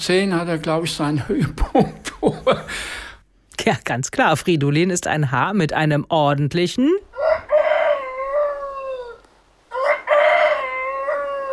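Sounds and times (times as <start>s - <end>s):
speech: 0.0s - 3.0s, 3.6s - 7.1s
rooster crowing: 7.1s - 11.5s.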